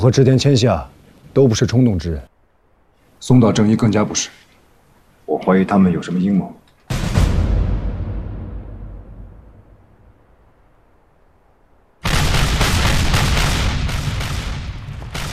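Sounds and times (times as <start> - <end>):
speech: 0.0 - 2.3, 3.2 - 4.4, 5.3 - 7.0
artillery bombardment explosions: 6.9 - 10.4, 12.0 - 15.3.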